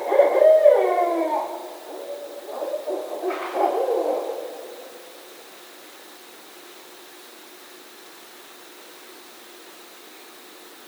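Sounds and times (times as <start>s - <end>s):
barred owl hooting: 0.0s - 5.6s.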